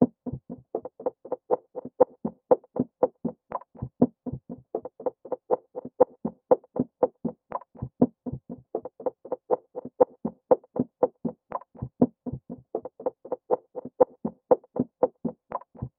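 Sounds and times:
percussion loop: 0:00.0 - 0:15.9.

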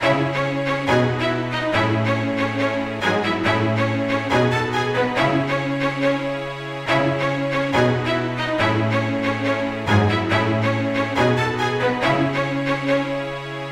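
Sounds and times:
string loop in C sharp minor: 0:00.0 - 0:13.6.

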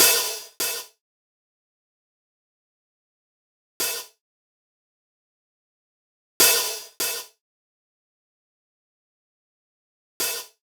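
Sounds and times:
drum loop with open hi-hat: 0:00.0 - 0:00.9, 0:06.4 - 0:07.3, 0:10.2 - 0:10.5.

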